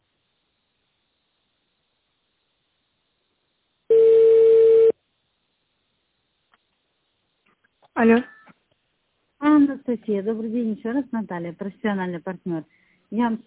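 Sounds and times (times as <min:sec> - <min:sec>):
electronic telephone line tones while waiting on hold for a call transfer: 0:03.9 - 0:04.9
speech: 0:08.0 - 0:08.3, 0:10.0 - 0:13.4.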